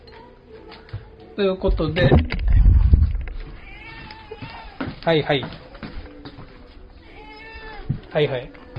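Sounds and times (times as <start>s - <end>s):
speech: 1.4s - 2.4s, 5.0s - 5.6s, 8.2s - 8.6s
low thump: 1.7s - 3.4s
cat meowing, begging for bonito flakes: 3.5s - 4.9s, 7.0s - 8.0s.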